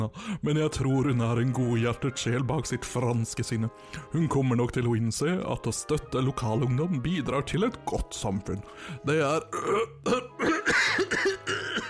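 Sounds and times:
speech: 0:00.0 - 0:11.6
man coughing: 0:09.5 - 0:11.8.

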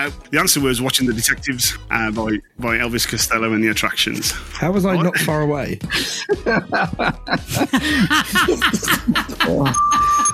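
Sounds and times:
speech: 0:00.0 - 0:10.2
several people laughing: 0:05.0 - 0:10.3
doorbell chime signalling next quiz round: 0:09.6 - 0:10.3.

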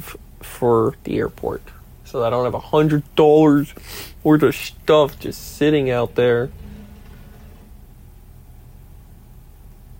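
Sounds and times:
speech: 0:00.1 - 0:06.6
garbage truck engine idling outside: 0:01.4 - 0:09.0.

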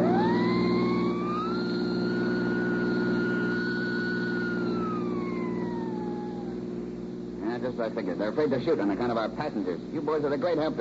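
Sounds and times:
police car siren wailing while driving: 0:00.0 - 0:06.8
speech: 0:07.6 - 0:10.7.

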